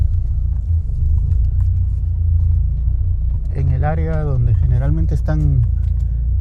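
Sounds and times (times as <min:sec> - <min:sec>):
car engine rumbling at low speed while parking near a gym: 0:00.0 - 0:06.3
speech: 0:03.8 - 0:05.8.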